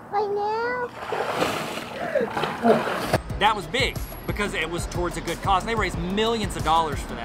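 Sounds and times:
speech: 0.2s - 1.4s, 2.2s - 7.2s
poured water splashing: 0.9s - 3.3s.

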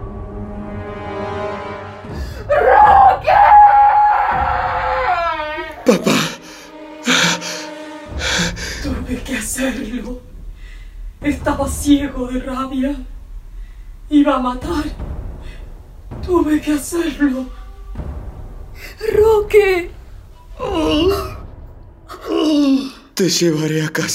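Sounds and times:
woman screaming: 2.4s - 7.7s
low rumble: 8.1s - 22.2s
speech: 11.9s - 13.1s, 14.3s - 15.0s, 16.3s - 17.6s, 19.1s - 19.9s, 20.6s - 21.3s, 23.2s - 24.1s.

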